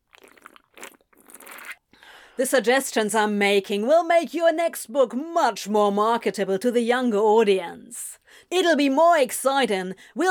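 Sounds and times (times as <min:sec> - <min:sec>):
loud wet slurping from a drink can: 0:00.0 - 0:01.9
speech: 0:02.4 - 0:10.2.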